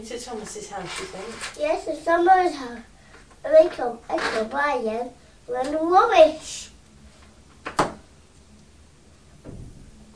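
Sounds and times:
speech: 0.0s - 6.7s
neighbour's door banging shut in windy weather: 7.7s - 8.0s, 9.4s - 10.0s.

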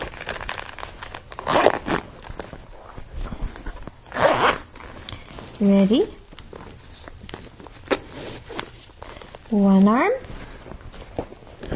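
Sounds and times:
backpack zipper being zipped up: 1.4s - 2.0s, 4.1s - 4.7s
speech: 5.6s - 6.2s, 9.5s - 10.3s.

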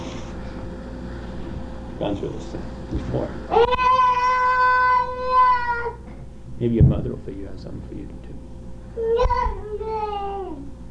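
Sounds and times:
speech: 2.0s - 3.9s, 6.6s - 10.5s
child crying in a tantrum: 3.5s - 6.0s, 9.0s - 10.7s.

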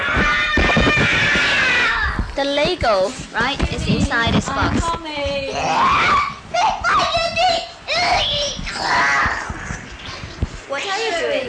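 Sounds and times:
young child imitating a tiger roar: 0.0s - 2.3s, 5.5s - 6.4s, 8.0s - 9.6s
speech: 2.4s - 9.5s, 10.7s - 11.4s.

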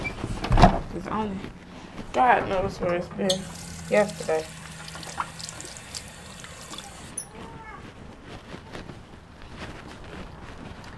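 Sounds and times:
speech: 1.0s - 4.6s
running tap water rinsing off an object: 3.3s - 7.2s.

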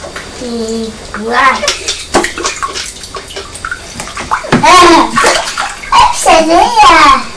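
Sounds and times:
water sloshing and splashing in a small toy-box tub: 0.0s - 7.3s
child squealing and chattering excitedly: 5.9s - 7.2s.

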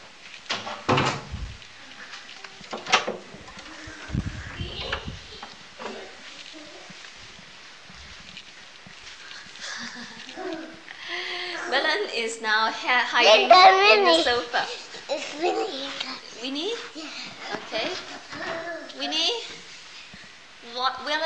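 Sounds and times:
door thudding shut: 0.5s - 1.4s
faint rustling: 1.2s - 21.2s
speech: 12.4s - 14.8s, 16.4s - 16.9s, 20.8s - 21.2s.

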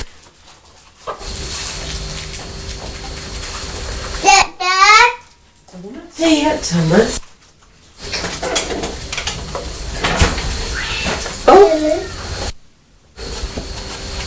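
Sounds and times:
low household background: 0.0s - 14.2s
speech: 6.2s - 7.2s
cats fighting outside yowling: 10.6s - 12.4s.

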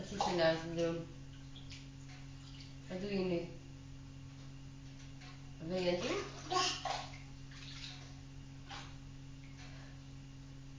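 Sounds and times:
bath water sloshing and splashing: 0.0s - 2.9s, 5.1s - 9.8s
warm bath water running: 0.0s - 3.0s, 5.6s - 9.6s
low constant hum: 0.0s - 10.7s
speech: 0.3s - 1.2s, 2.9s - 3.6s, 5.6s - 7.0s.

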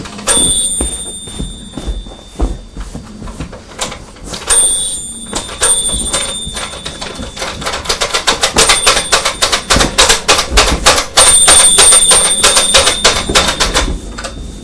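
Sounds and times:
pet bird ringing a small toy bell: 0.2s - 2.7s, 3.8s - 14.4s.

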